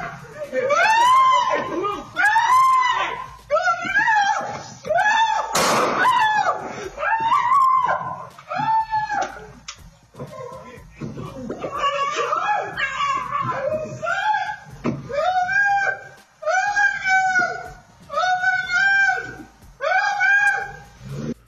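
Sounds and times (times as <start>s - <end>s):
laughter: 0.0s - 2.5s, 10.2s - 15.6s
man screaming during attack: 0.0s - 9.6s, 10.2s - 20.8s
sharp loud crack: 5.5s - 6.2s.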